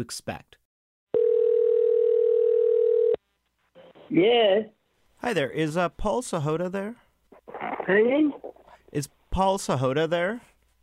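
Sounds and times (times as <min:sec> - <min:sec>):
speech: 0:00.0 - 0:00.6, 0:04.1 - 0:07.0, 0:07.9 - 0:10.5
electronic telephone ringing tone heard through the line: 0:01.1 - 0:03.2.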